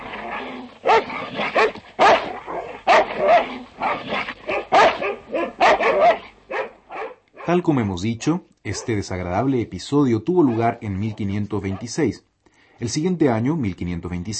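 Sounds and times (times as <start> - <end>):
fierce hunting dogs barking and yelping: 0.0 - 7.5, 10.3 - 11.9
speech: 7.5 - 14.3.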